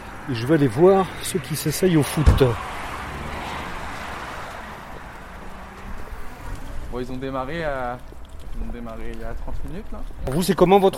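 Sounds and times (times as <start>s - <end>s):
car engine and road noise driving on country roads of Parthenay: 0.0s - 10.2s
speech: 0.3s - 2.8s, 7.0s - 10.9s.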